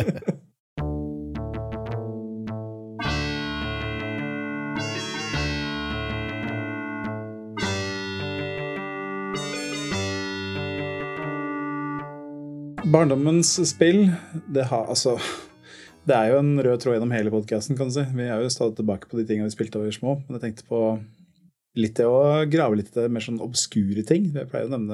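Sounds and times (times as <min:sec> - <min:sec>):
speech: 0:00.0 - 0:00.3, 0:12.9 - 0:21.2, 0:21.8 - 0:24.9
laughter: 0:00.0 - 0:00.5
buzzy electronic break jingle with distorted synth tones: 0:00.8 - 0:15.1.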